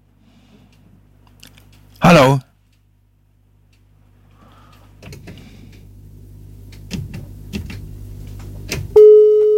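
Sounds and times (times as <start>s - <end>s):
speech: 2.1s - 2.5s
steady electronic telephone busy tone after a dropped call: 9.0s - 9.5s.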